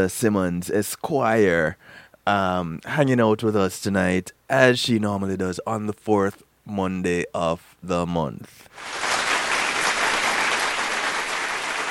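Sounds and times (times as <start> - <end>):
speech: 0.0 - 9.1
crowd applauding: 8.8 - 11.8.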